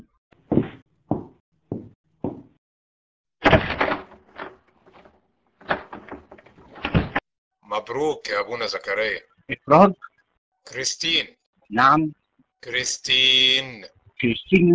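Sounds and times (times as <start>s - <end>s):
door being handled and shut with clattering and thudding: 3.4s - 7.2s
final solid bump of door: 3.4s - 7.2s
steady knocks: 3.4s - 7.2s
speech: 7.7s - 14.7s.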